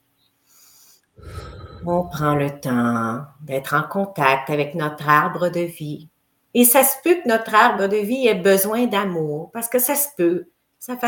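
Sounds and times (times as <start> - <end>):
deep breath in and out: 0.4 - 2.5
speech: 1.8 - 11.0.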